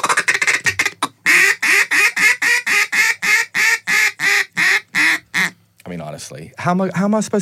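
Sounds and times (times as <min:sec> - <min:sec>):
duck call blown quacking: 0:00.0 - 0:05.6
speech: 0:06.2 - 0:07.4.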